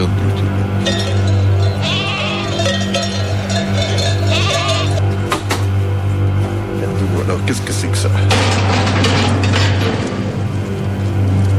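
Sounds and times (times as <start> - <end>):
busy farmyard-like background: 0.0 - 7.9
constant low droning hum: 0.0 - 11.5
horses whinnying and neighing: 0.8 - 5.2.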